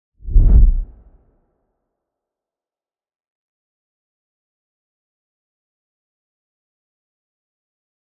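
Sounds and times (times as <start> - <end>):
whoosh: 0.2 - 1.0.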